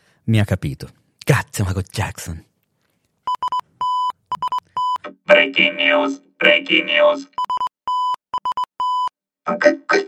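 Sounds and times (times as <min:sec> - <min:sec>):
speech: 0:00.3 - 0:02.5, 0:05.3 - 0:07.5, 0:09.5 - 0:10.0
mid-pitched tone keying out Morse code: 0:03.3 - 0:05.0, 0:07.4 - 0:09.2.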